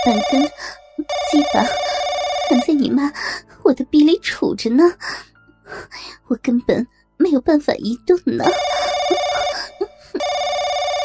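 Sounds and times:
speech: 0:00.0 - 0:01.9, 0:02.5 - 0:09.2
telephone ringing with a steady electronic bell tone: 0:00.0 - 0:03.2, 0:08.4 - 0:11.0.

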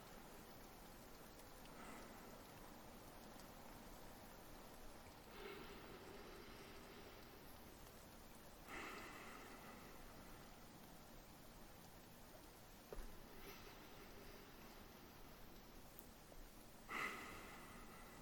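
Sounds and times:
quiet hiss: 0:00.0 - 0:18.2
slow deep breathing: 0:01.6 - 0:03.4, 0:05.0 - 0:10.7, 0:13.2 - 0:15.6, 0:16.8 - 0:18.2.

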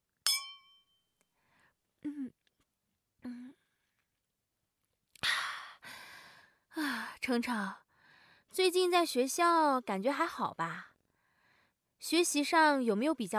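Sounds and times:
glasses clinking in a toast: 0:00.3 - 0:00.9
speech: 0:07.3 - 0:07.8, 0:08.5 - 0:10.9, 0:12.0 - 0:13.3.

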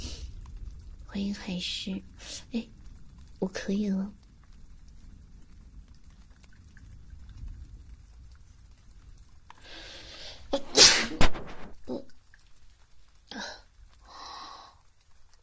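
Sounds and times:
faint low rumble: 0:00.0 - 0:15.4
speech: 0:01.2 - 0:02.8, 0:03.4 - 0:04.2
person sneezing: 0:10.6 - 0:11.3.

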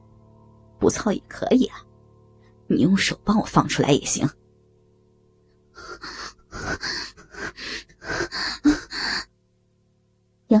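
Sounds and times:
speech: 0:00.8 - 0:01.9, 0:02.7 - 0:04.4
heavy rapid panting breaths: 0:05.8 - 0:09.2.

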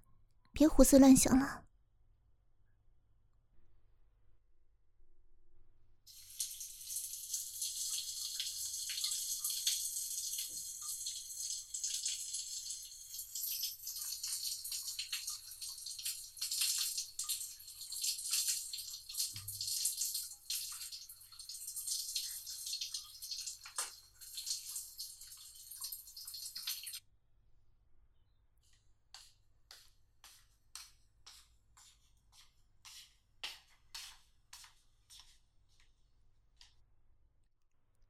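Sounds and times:
speech: 0:00.6 - 0:01.6
water running for a bath or shower at home: 0:06.1 - 0:27.0.

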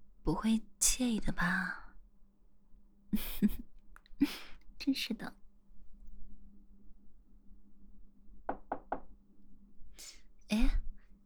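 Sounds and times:
low hum: 0:00.0 - 0:11.2
speech: 0:00.3 - 0:01.8, 0:03.1 - 0:05.4
quick knocks on a door: 0:08.5 - 0:09.1.

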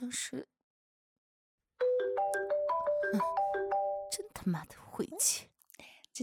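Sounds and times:
speech: 0:00.0 - 0:00.6, 0:04.5 - 0:06.2
bright electronic phone ringtone melody: 0:01.8 - 0:04.2.

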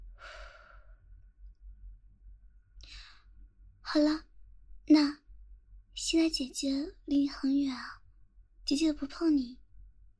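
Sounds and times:
low steady hum: 0:00.0 - 0:10.1
deep slow breathing: 0:00.1 - 0:01.2
speech: 0:03.9 - 0:04.3, 0:04.9 - 0:05.2, 0:06.1 - 0:08.0, 0:08.7 - 0:09.6.

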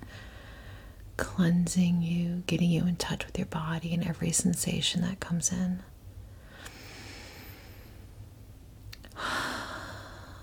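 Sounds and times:
speech: 0:01.2 - 0:06.0
deep slow breathing: 0:06.4 - 0:08.2, 0:09.1 - 0:10.4.

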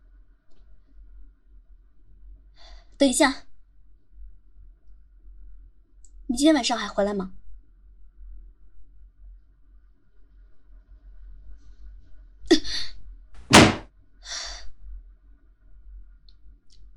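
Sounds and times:
speech: 0:03.0 - 0:03.5, 0:06.4 - 0:07.4
door rattling after slam: 0:13.4 - 0:13.8
door slamming shut: 0:13.4 - 0:13.9
lighter knock: 0:13.5 - 0:13.8.

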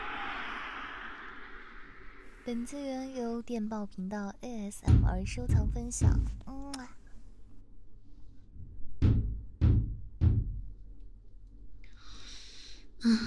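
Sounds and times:
speech: 0:02.4 - 0:06.5
firm knocks on a door: 0:04.9 - 0:06.5, 0:08.6 - 0:10.8.

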